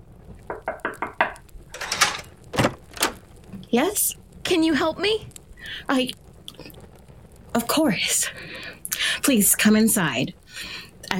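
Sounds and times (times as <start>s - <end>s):
knocking on a wooden door: 0.5s - 1.4s
louder brushier clunks and rattles: 1.7s - 3.2s
speech: 3.7s - 6.8s, 7.6s - 11.1s.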